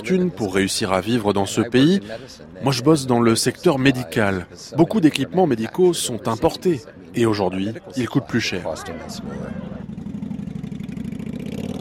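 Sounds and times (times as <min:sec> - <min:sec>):
speech: 0:00.0 - 0:09.7
chromed motorcycle engine idling: 0:09.2 - 0:11.8.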